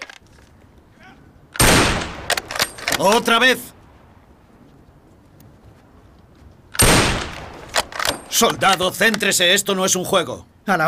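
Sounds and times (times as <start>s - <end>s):
rifle gunshot cracks on a military firing range: 1.6s - 2.5s, 6.8s - 8.2s
rifle shot on a military firing range: 1.6s - 3.0s, 6.8s - 8.4s
speech: 3.0s - 3.7s, 8.4s - 10.8s.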